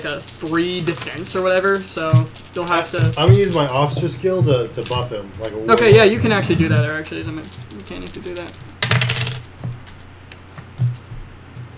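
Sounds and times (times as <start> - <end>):
several dice clattering and tumbling across a table: 0.0 - 4.1, 6.7 - 10.0
speech: 0.0 - 8.8.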